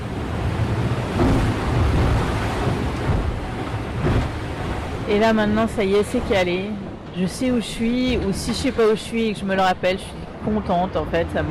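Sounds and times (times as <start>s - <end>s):
strong wind roaring over rough water: 0.0s - 11.5s
sailboat slamming into waves: 0.4s - 5.4s
speech: 5.1s - 11.5s.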